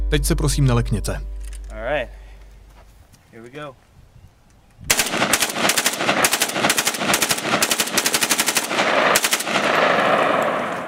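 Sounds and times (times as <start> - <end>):
speech: 0.1 - 1.3, 3.4 - 3.9
AK-47 assault rifle firing automatic bursts: 4.9 - 10.8.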